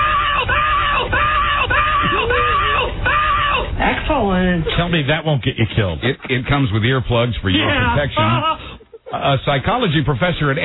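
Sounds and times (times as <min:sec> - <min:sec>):
woman screaming in rising-and-falling wails: 0:00.0 - 0:04.0
speech: 0:04.1 - 0:10.6.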